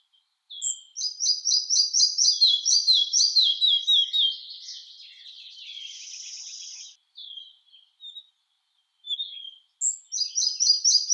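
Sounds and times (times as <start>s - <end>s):
red-breasted flycatcher Ficedula parva song: 0.6s - 7.0s, 9.8s - 11.1s.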